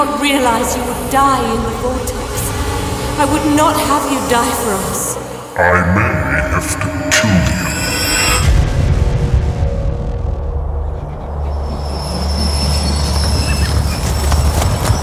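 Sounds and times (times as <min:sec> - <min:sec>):
train rumbling along the rails with heavy low clatter: 0:00.0 - 0:15.0
speech: 0:00.2 - 0:02.6, 0:03.2 - 0:07.5
high metallic train wheel squeals: 0:11.2 - 0:15.0.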